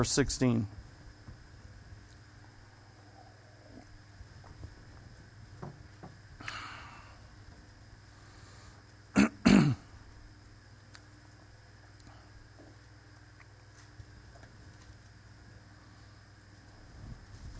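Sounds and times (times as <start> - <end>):
person clearing throat: 9.2 - 9.9.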